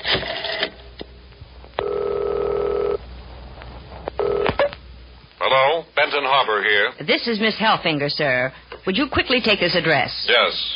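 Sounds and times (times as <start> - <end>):
telephone ringing: 1.8 - 3.0, 4.2 - 4.6
speech: 5.5 - 10.7.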